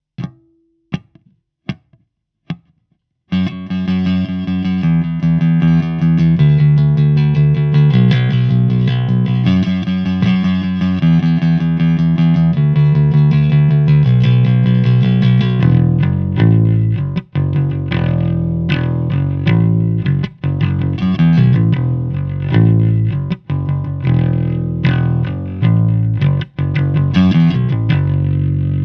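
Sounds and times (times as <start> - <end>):
heavy bass: 3.4 - 28.8.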